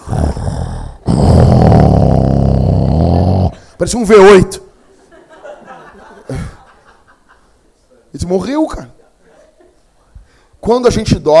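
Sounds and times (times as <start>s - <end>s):
person imitating a man's snoring: 0.0s - 3.7s
speech: 3.8s - 4.6s, 8.3s - 8.9s, 10.7s - 11.3s
laughter: 4.8s - 7.6s, 9.0s - 9.9s.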